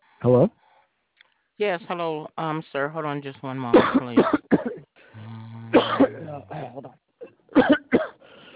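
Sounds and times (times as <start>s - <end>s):
speech: 0.2s - 0.6s, 1.6s - 4.6s
harsh loud coughs: 3.8s - 4.9s, 5.7s - 8.2s
faint raspy breath: 4.9s - 5.7s, 8.2s - 8.5s.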